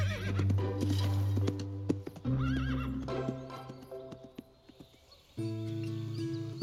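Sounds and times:
horse whinnying: 0:00.0 - 0:00.6, 0:02.2 - 0:03.1
hooves of a ridden horse at full gallop: 0:00.0 - 0:06.5.

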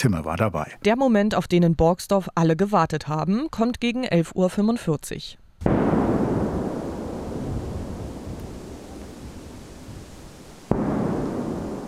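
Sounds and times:
speech: 0:00.0 - 0:05.8
controlled detonation of explosive ordnance in a wooded area: 0:05.6 - 0:11.8
low booming: 0:05.6 - 0:11.8.

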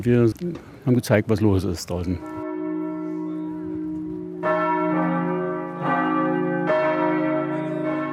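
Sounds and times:
speech: 0:00.0 - 0:02.4
church bells ringing a full overlapping peal: 0:02.2 - 0:08.1.

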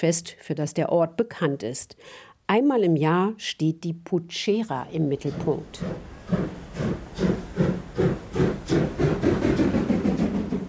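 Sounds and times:
speech: 0:00.0 - 0:07.4
steam locomotive chuffing with hissing steam: 0:05.3 - 0:10.6.

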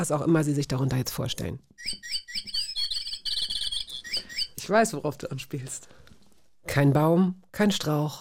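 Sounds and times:
speech: 0:00.0 - 0:02.2, 0:04.7 - 0:06.0, 0:06.6 - 0:08.2
motion-sensor epoxy-resin canary toy playing canary chirps and trills: 0:01.8 - 0:04.6.

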